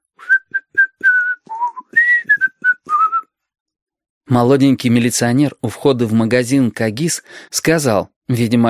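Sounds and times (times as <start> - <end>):
boy striding along a street whistling loudly and unsteadily: 0.2 - 3.2
speech: 4.3 - 8.6.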